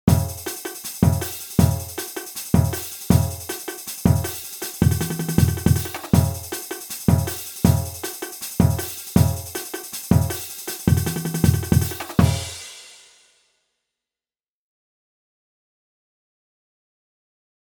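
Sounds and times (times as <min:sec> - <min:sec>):
stadium groove music with brass: 0:00.1 - 0:13.1.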